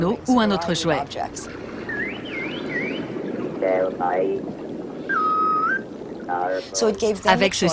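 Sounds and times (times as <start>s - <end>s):
speech: 0.0s - 1.6s, 3.6s - 4.6s, 6.3s - 7.7s
low murky underwater-like rumble: 0.0s - 7.7s
synthetic dolphin-style whistles played to dolphins: 1.8s - 3.1s, 5.1s - 5.8s.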